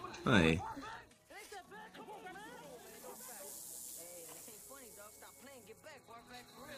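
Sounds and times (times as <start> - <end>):
speech: 0.2 - 0.9
snake hissing: 2.4 - 6.7.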